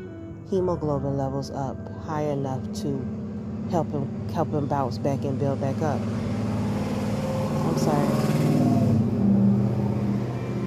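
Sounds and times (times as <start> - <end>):
speech: 0.5 - 6.3, 7.7 - 8.4
truck engine revving outside in the American South: 3.0 - 10.6.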